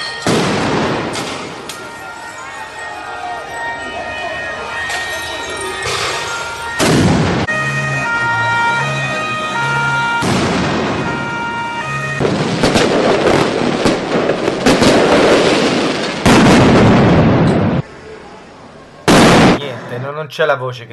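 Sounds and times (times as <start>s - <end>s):
firecrackers bursting at a street protest: 0.0s - 2.4s, 4.8s - 7.5s, 10.0s - 17.8s, 19.1s - 19.6s
crowd roaring at a street protest: 0.2s - 12.1s
wailing siren-like tone: 1.0s - 13.8s
speech: 20.2s - 20.9s.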